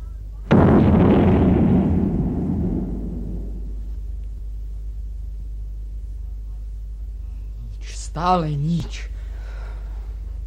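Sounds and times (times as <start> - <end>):
cannon shot fired by a crew on command: 0.5 - 4.3
speech: 8.2 - 9.2.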